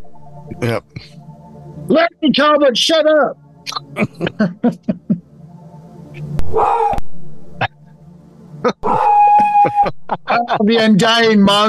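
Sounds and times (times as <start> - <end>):
speech: 0.5 - 1.2, 1.9 - 3.4, 4.0 - 5.0, 6.2 - 7.0, 10.1 - 11.6
laughter: 3.7 - 5.2, 8.6 - 11.4
dog howling: 6.4 - 7.0, 8.8 - 9.9
dog barking: 6.5 - 7.0.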